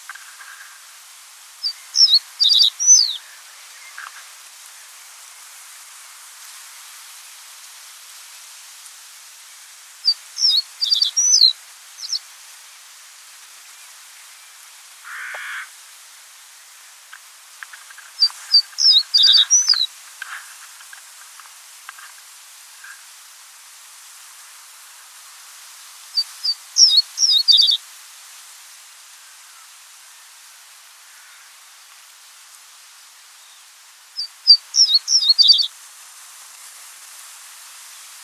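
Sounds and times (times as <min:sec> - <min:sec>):
reed bunting calls: 0:01.6 - 0:04.2, 0:10.4 - 0:12.2, 0:17.7 - 0:20.4, 0:26.2 - 0:27.8, 0:34.2 - 0:35.7.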